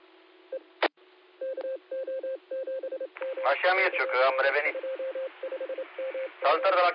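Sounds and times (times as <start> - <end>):
telephone ringing with short electronic beeps at mountain hut: 1.4 - 6.8
speech: 3.4 - 4.9, 6.4 - 6.9.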